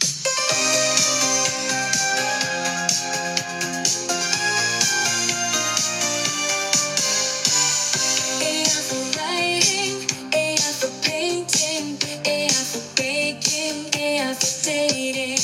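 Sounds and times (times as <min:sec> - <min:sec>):
AI-generated 1980s disco-pop song: 0:00.0 - 0:15.4.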